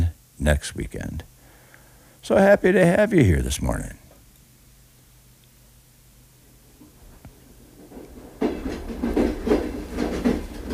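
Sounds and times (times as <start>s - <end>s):
speech: 0.4s - 1.3s, 2.2s - 4.0s
train rumbling along the rails: 7.9s - 10.7s
train wheels clickety-clacking over track joints: 7.9s - 10.7s.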